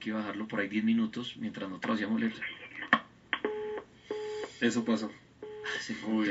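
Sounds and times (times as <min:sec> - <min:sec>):
speech: 0:00.0 - 0:02.7, 0:04.6 - 0:06.2
cellphone clicks as a call is answered: 0:02.8 - 0:04.6.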